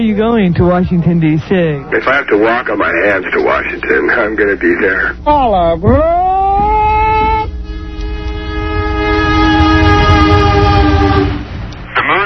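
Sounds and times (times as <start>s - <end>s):
speech: 0.0s - 6.2s
low rumble of passenger train rolling out of station: 0.0s - 12.2s
passenger train horn blast and sustained chord: 6.5s - 11.8s.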